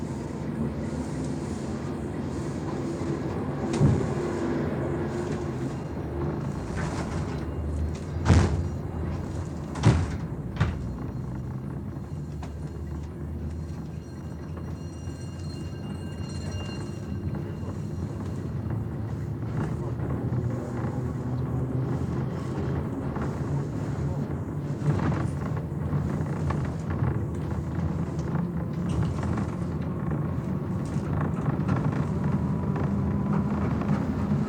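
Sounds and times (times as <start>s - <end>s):
moving train rumble: 0.0s - 34.4s
train doors slamming: 3.6s - 4.4s, 6.7s - 11.0s.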